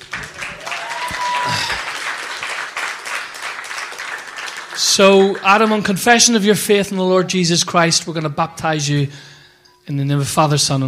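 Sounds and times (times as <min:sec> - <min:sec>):
audience clapping: 0:00.0 - 0:06.4
speech: 0:04.8 - 0:09.3, 0:09.9 - 0:10.8.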